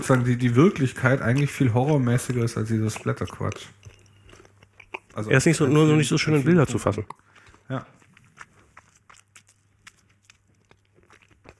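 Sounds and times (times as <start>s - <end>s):
speech: 0.0s - 3.9s, 5.2s - 8.0s
crunchy mouth noise: 0.0s - 11.5s
low hum: 0.0s - 11.5s
wet chewing and lip smacking while eating: 0.0s - 11.5s.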